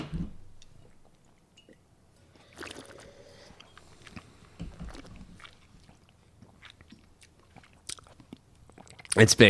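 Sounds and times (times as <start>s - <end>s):
person sipping and slurping red wine: 2.2s - 9.2s
wet swishing and smacking as red wine is tasted: 2.4s - 9.2s.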